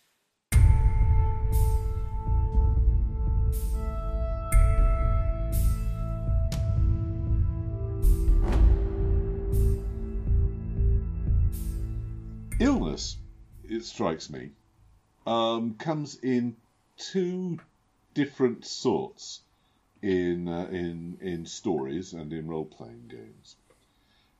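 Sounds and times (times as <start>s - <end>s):
slow somber funereal music: 0.5s - 13.8s
speech: 13.0s - 14.6s, 15.2s - 19.4s, 20.0s - 23.6s.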